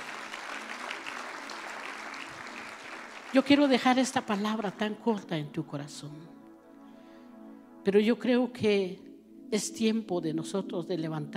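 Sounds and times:
audience applauding: 0.0s - 3.9s
speech: 3.3s - 6.4s, 7.8s - 11.3s.

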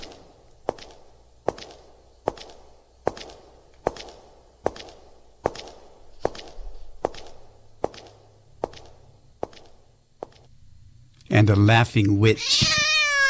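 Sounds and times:
slow sharp heavy footsteps in the dark: 0.0s - 10.5s
low rumbling ambient background: 0.0s - 11.9s
speech: 11.4s - 13.0s.

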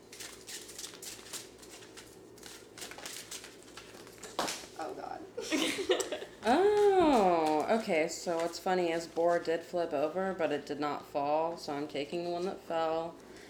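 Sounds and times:
deck of playing cards being shuffled: 0.0s - 4.8s
speech: 4.8s - 6.8s, 7.7s - 13.2s
faint laughter: 5.4s - 6.9s.

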